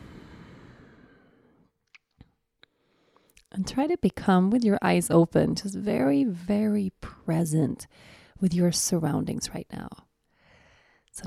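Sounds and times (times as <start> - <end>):
deep breath out during a guided breathing exercise: 0.0 - 1.7, 7.9 - 8.4, 10.3 - 11.1
speech: 3.5 - 10.1.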